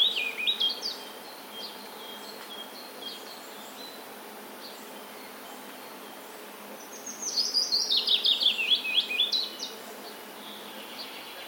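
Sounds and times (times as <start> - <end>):
willow warbler song: 0.0 - 11.4.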